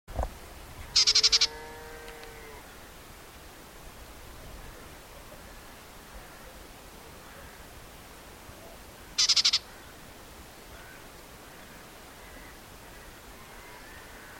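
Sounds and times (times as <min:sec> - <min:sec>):
white-throated warbler harsh rattle calls: 0:01.0 - 0:01.5, 0:09.2 - 0:09.9.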